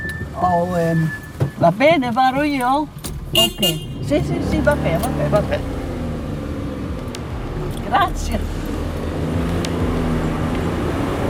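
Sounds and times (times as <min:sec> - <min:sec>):
road noise from inside a small car: 0:00.0 - 0:11.2
small car engine rumble in city traffic: 0:00.0 - 0:11.2
speech: 0:00.4 - 0:05.8, 0:07.9 - 0:08.6.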